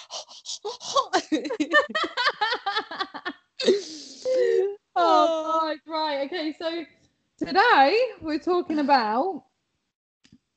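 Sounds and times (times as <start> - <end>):
person imitating heavy excited breathing: 0.0 - 1.6, 3.6 - 5.2
person laughing: 0.0 - 5.2
speech: 6.5 - 9.5.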